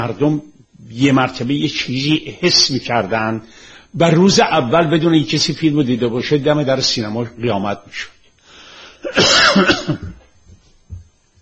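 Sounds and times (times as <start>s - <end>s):
speech: 0.0s - 8.2s, 9.0s - 10.2s
loud harsh coughing burst: 9.0s - 10.3s.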